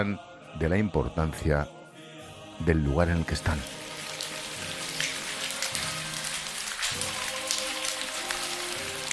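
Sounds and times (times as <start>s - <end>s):
speech: 0.0s - 1.8s, 2.6s - 3.8s
steady rain falling on a surface: 3.3s - 9.1s.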